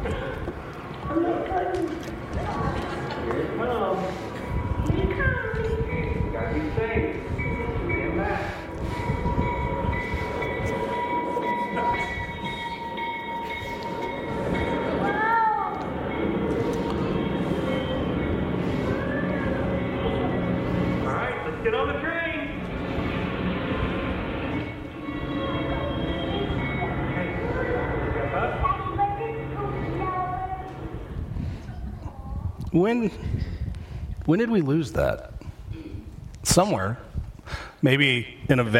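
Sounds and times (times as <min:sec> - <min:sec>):
train rumbling past: 0:00.0 - 0:34.1
train horn: 0:24.6 - 0:27.8
speech: 0:32.8 - 0:33.3, 0:34.3 - 0:35.3, 0:36.5 - 0:37.0, 0:37.8 - 0:38.7.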